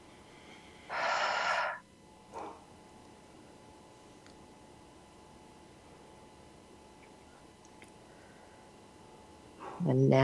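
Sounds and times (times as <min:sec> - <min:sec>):
deep breathing in through the nose and out through the mouth: 0:00.2 - 0:01.8.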